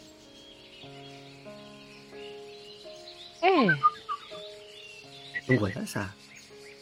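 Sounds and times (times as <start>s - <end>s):
small bird whistling on a boat: 1.9s - 6.8s
speech: 3.5s - 3.9s, 5.5s - 6.3s.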